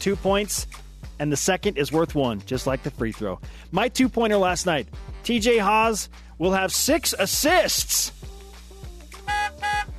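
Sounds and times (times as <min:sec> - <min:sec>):
speech: 0:00.0 - 0:08.2
brassy buzzer-like wrong answer honk sound effect: 0:09.2 - 0:09.9.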